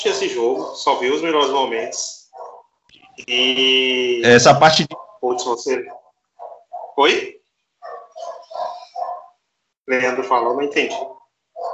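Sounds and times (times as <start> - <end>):
dog barking in the street: 0.0 - 2.8, 4.8 - 9.4, 10.8 - 11.7
speech: 0.1 - 2.2, 3.2 - 6.0, 7.0 - 7.4, 9.9 - 11.2.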